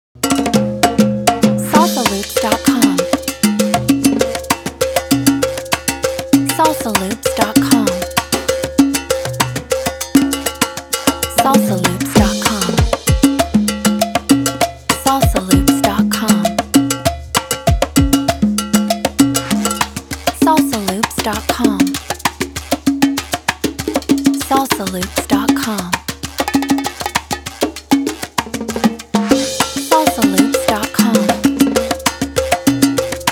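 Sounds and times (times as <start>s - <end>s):
salsa percussion loop: 0.2s - 33.2s.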